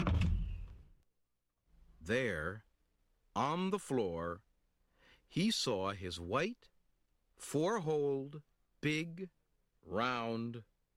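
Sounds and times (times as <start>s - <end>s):
door at home slamming shut: 0.0s - 0.7s
speech: 2.1s - 2.7s, 3.4s - 4.5s, 5.3s - 6.7s, 7.4s - 10.7s.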